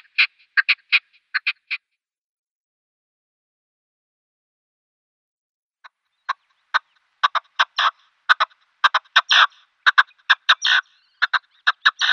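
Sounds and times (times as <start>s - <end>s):
male red-legged partridge giving display calls: 0.0s - 1.8s, 5.8s - 12.1s.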